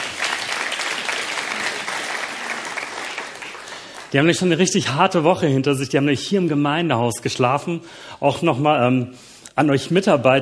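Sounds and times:
sustained applause from a sizable audience: 0.0s - 4.6s
speech: 4.1s - 10.4s.

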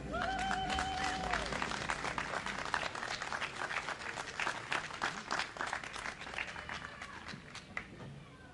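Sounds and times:
voices cheering: 0.0s - 4.9s
audience applause: 0.0s - 8.0s.

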